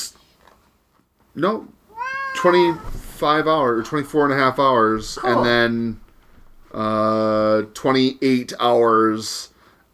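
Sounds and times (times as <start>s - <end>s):
speech: 1.4s - 1.8s, 2.4s - 6.0s, 6.7s - 9.5s
domestic cat meowing plaintively: 1.9s - 3.8s.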